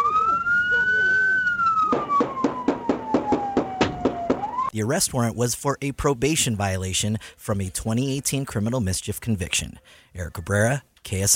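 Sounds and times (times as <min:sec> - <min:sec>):
police siren wailing: 0:00.0 - 0:04.8
rapid sharp bangs: 0:01.8 - 0:04.7
speech: 0:04.8 - 0:11.3.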